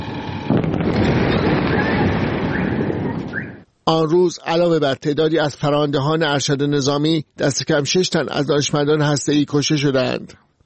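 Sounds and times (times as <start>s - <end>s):
loud bomb blast: 0.0s - 3.6s
sustained dense roar of rumbling and crackling: 0.0s - 3.6s
speech: 3.9s - 10.4s.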